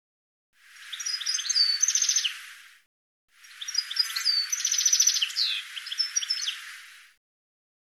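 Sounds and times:
bird chirping: 0:00.6 - 0:02.8, 0:03.4 - 0:07.2.

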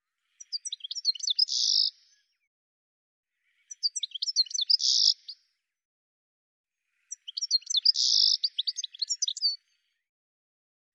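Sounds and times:
bird song of high chirps and twittering ending in a buzzy trill: 0:00.4 - 0:02.4, 0:03.7 - 0:05.4, 0:07.1 - 0:09.6.

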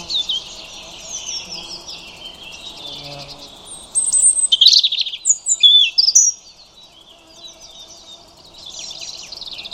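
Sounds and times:
European robin singing high whistles, trills and slurred notes: 0:00.0 - 0:09.7.

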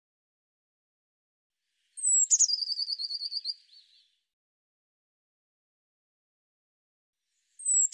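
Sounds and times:
Eurasian blue tit giving a sliding note into a trilled series: 0:02.0 - 0:03.6.

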